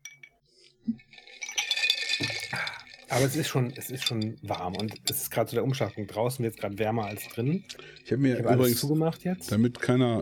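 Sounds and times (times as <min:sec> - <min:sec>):
cola and water sloshing in a glass: 0:00.9 - 0:09.5
ice cubes clinking in a glass of cola mixed with water: 0:01.1 - 0:07.8
speech: 0:03.1 - 0:10.2.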